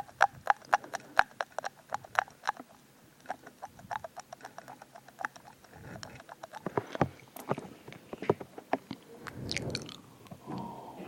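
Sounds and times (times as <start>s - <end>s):
rapid wet mouth clicks and smacks: 0.0s - 6.8s, 8.9s - 10.0s
slurping chewing mouth sounds: 0.0s - 8.0s, 8.8s - 10.1s.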